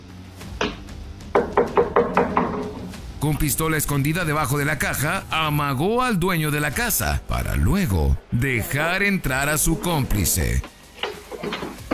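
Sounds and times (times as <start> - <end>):
knocking on a wooden front door of a house: 0.6 - 2.9
speech: 3.2 - 10.7.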